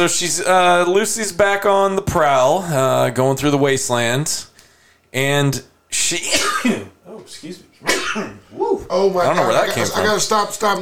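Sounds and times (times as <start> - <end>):
speech: 0.0 - 4.5, 5.1 - 10.8
person sneezing: 7.8 - 8.4.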